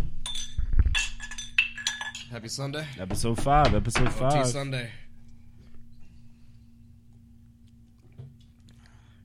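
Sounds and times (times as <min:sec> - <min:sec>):
glasses of tequila clinking together in a toast: 0:00.2 - 0:02.4
speech: 0:02.3 - 0:05.0.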